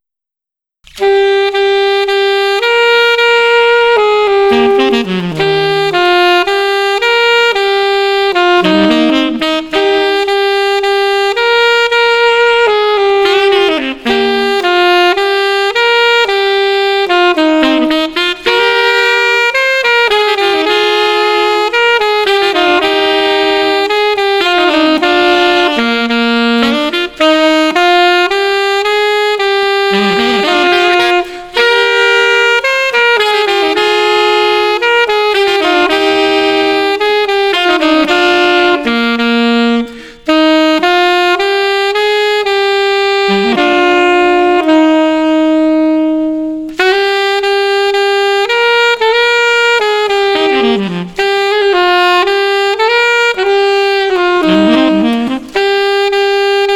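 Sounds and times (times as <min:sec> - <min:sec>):
street jazz music: 0:00.9 - 0:56.7.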